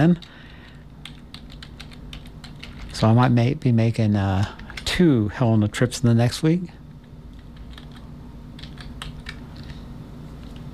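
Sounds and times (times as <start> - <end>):
speech: 0.0 - 0.4, 3.0 - 6.8
steady low hum: 0.0 - 10.7
typing on a computer keyboard: 0.1 - 3.0, 7.0 - 9.8.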